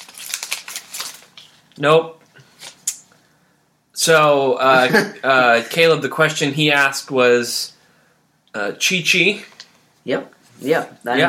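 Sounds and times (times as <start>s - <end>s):
paper being handled and flipped over: 0.0s - 1.6s
speech: 1.8s - 2.2s, 4.0s - 7.8s, 8.5s - 11.2s.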